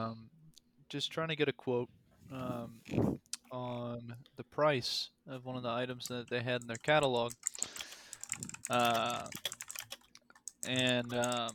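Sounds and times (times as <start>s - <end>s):
speech: 0.0s - 0.3s, 0.9s - 7.8s, 8.4s - 9.5s, 10.6s - 11.5s
loud computer keyboard typing: 6.1s - 11.5s.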